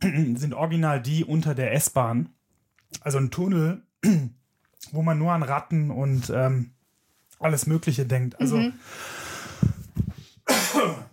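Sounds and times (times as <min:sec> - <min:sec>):
speech: 0:00.0 - 0:06.8, 0:07.4 - 0:09.2
person coughing: 0:04.0 - 0:04.3, 0:10.5 - 0:11.1.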